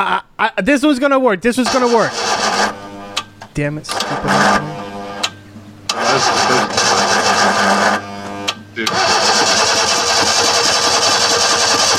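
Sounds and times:
speech: 0.0s - 2.8s, 3.6s - 4.8s, 8.8s - 9.4s
manual-transmission car engine cranking and failing to start: 1.6s - 2.8s, 3.9s - 5.3s, 5.9s - 11.9s.

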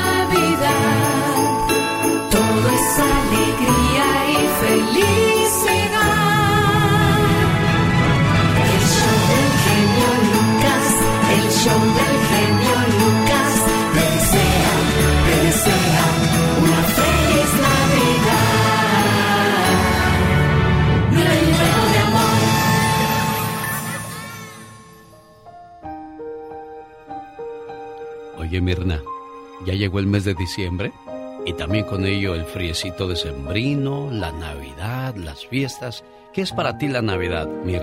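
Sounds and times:
bright bells chiming: 0.0s - 6.4s, 8.6s - 26.1s
loud full musical backing: 0.0s - 37.8s
speech: 29.7s - 37.8s.

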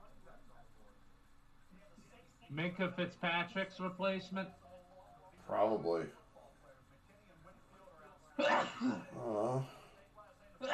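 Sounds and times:
speech: 2.5s - 4.6s, 5.5s - 6.2s, 8.8s - 9.8s
person sneezing: 8.4s - 9.1s.

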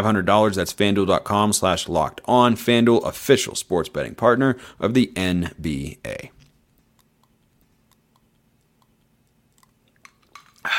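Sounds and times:
speech: 0.0s - 6.4s
soft wet clicks and faint clinks: 6.4s - 10.7s
person sipping a drink: 6.8s - 10.7s.

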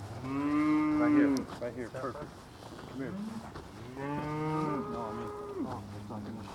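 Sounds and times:
small group of heifers and steers mooing: 0.2s - 1.5s, 3.0s - 6.3s.

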